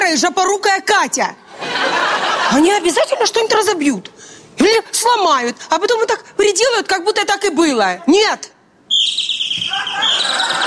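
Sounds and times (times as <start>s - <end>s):
speech: 0.1s - 1.9s, 2.5s - 10.6s
laughter: 1.5s - 3.2s, 9.6s - 10.6s
several small birds chirping: 8.9s - 10.6s.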